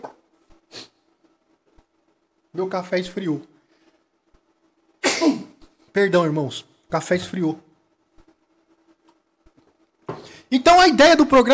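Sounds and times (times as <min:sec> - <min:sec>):
quiet steady hum: 0:00.0 - 0:11.5
speech: 0:02.6 - 0:03.5, 0:06.0 - 0:07.7, 0:10.6 - 0:11.5
person sneezing: 0:05.0 - 0:05.6
faint breath: 0:10.1 - 0:10.5.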